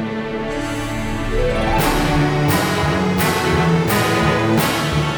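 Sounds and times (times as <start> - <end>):
fanfare jingle: 0.2 - 5.0.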